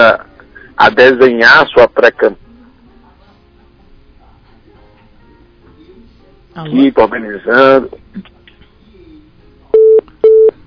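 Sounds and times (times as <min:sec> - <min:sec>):
speech: 0:00.2 - 0:02.4, 0:06.6 - 0:08.3
telephone busy tone after a dropped phone call: 0:09.7 - 0:10.5.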